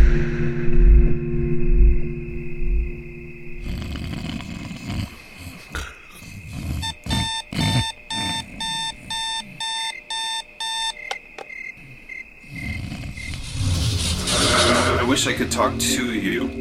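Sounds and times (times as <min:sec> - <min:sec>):
low rumbling noise: 0:00.0 - 0:03.6, 0:13.0 - 0:16.5
alarm clock beeping: 0:06.8 - 0:13.4
speech: 0:15.2 - 0:16.5.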